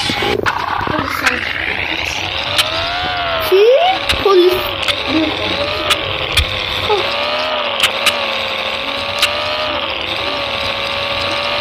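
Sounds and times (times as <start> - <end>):
car engine humming while driving: 0.0 - 11.6
sharp clicks: 0.0 - 11.6.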